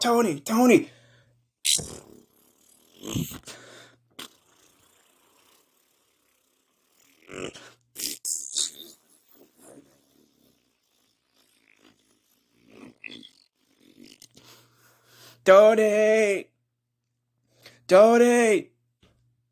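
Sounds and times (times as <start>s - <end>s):
speech: 0.0s - 1.0s, 1.8s - 2.3s, 3.0s - 3.7s, 7.3s - 8.4s, 15.4s - 16.5s, 17.9s - 18.7s
low sputtering fart: 1.7s - 14.6s.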